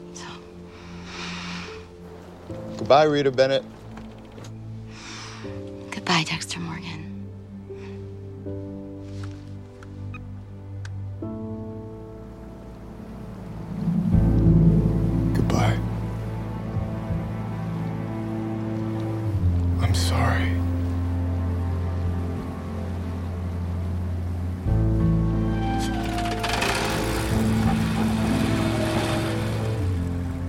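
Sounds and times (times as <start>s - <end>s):
speech: 2.5s - 3.8s, 6.1s - 7.0s
motorboat engine droning: 10.5s - 30.4s
wash rushing past a motorboat hull: 12.2s - 19.4s, 20.6s - 30.4s.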